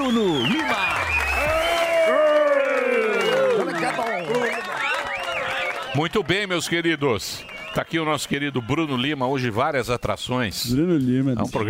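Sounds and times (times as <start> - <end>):
studio audience whoops and cheering voices: 0.0 - 9.2
studio audience applauding: 0.0 - 9.7
speech: 0.1 - 0.8, 6.0 - 11.6.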